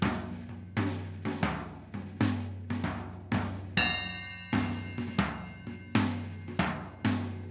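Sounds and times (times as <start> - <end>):
dirty tom drum loop: 0.0 - 7.4.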